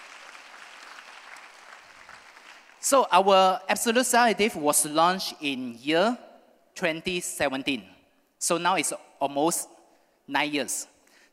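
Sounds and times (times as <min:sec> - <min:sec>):
audience applauding at a skincare product presentation: 0:00.0 - 0:02.9
speech: 0:02.8 - 0:09.7, 0:10.3 - 0:10.9.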